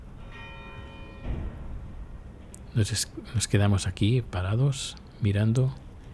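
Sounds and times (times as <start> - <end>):
cathedral church bells ringing across an open square: 0.0 - 4.6
outdoor noise: 0.0 - 6.1
speech: 2.8 - 5.8.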